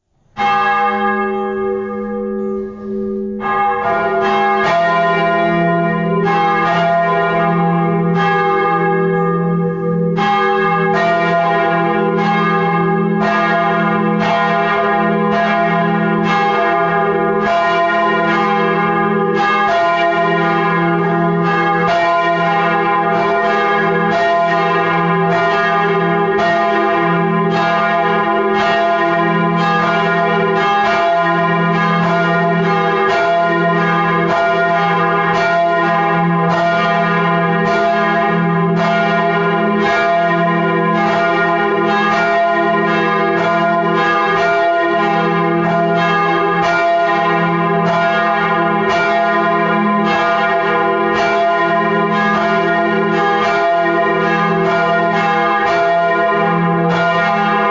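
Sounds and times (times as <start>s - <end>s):
bells ringing in Bienenbuettel: 0.4s - 57.6s.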